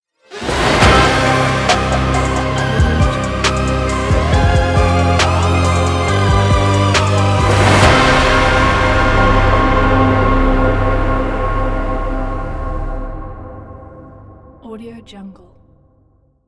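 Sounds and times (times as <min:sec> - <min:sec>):
dark Halloween hip hop intro music: 0:00.6 - 0:13.9.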